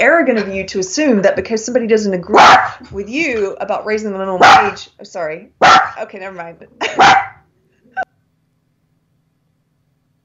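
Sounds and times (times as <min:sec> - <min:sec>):
speech: 0:00.0 - 0:07.4
dog barking: 0:02.3 - 0:02.8, 0:04.4 - 0:04.8, 0:05.6 - 0:06.0, 0:06.8 - 0:07.4.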